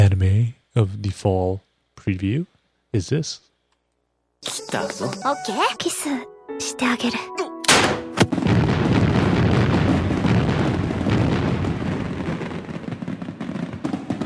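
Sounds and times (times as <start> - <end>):
speech: 0.8 - 3.5, 4.4 - 7.4
fireworks exploding: 7.8 - 14.2.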